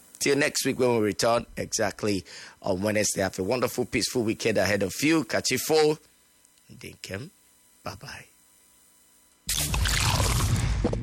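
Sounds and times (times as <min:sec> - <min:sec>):
speech: 0:00.2 - 0:06.1, 0:06.7 - 0:08.3
beer fizzing and pouring from a newly opened 500ml can: 0:09.5 - 0:10.5.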